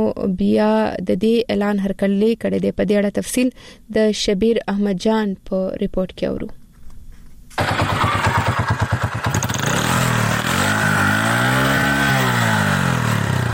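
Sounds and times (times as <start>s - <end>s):
speech: 0.0s - 6.6s, 7.6s - 8.0s
motorcycle engine running and revving: 7.6s - 13.5s.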